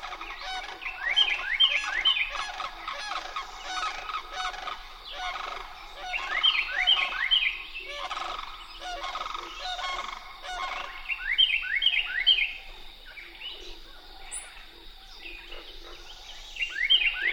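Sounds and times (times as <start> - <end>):
pair of sandhill cranes giving guttural courtship calls at Crane Marsh in Georgia: 0.0 - 17.3.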